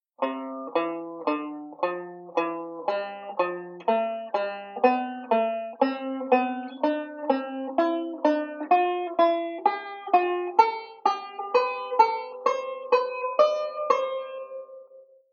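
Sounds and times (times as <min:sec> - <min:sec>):
chord melody in broken thirds: 0:00.2 - 0:14.8.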